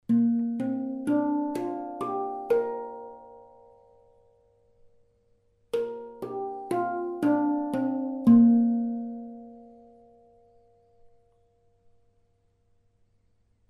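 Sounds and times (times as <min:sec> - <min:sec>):
handpan playing in B flat: 0:00.0 - 0:04.8, 0:05.7 - 0:10.7.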